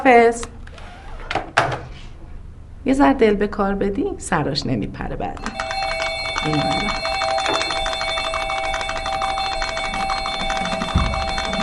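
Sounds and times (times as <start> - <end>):
speech: 0.0 - 0.5, 2.8 - 5.7, 6.4 - 7.1
call bell rung in an office: 5.4 - 11.6.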